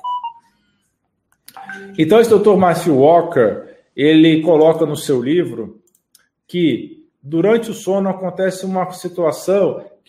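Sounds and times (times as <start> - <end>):
mobile phone electronic ringtone: 1.5 - 2.5
speech: 1.8 - 5.8, 6.5 - 9.9.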